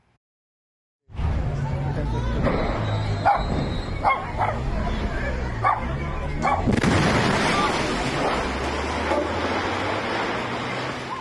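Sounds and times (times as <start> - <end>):
voices: 1.4 - 8.6
dogs barking: 3.2 - 4.8, 5.6 - 6.7
gas plant explosion roar: 6.6 - 11.0.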